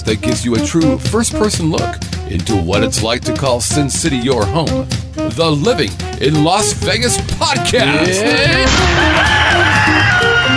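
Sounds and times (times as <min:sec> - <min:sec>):
speech: 0:00.0 - 0:09.7
roosters crowing: 0:08.2 - 0:10.5.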